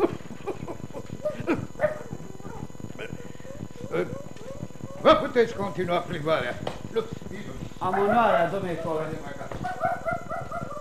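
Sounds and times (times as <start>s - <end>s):
dog barking and whimpering: 1.2s - 2.7s, 9.6s - 10.7s
speech: 3.9s - 4.2s, 5.1s - 9.4s.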